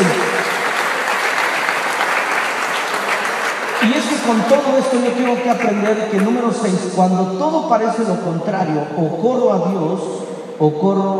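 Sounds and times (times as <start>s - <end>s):
congregation applauding: 0.0s - 6.9s
speech: 4.3s - 11.1s.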